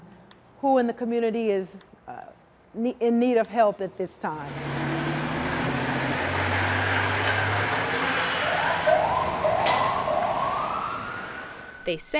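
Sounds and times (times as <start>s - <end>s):
speech: 0.6s - 5.2s, 11.9s - 12.1s
heavy diesel engine of a fire engine pulling out: 4.5s - 10.5s
fire engine siren wailing as the crew leaves on a call: 4.5s - 12.0s.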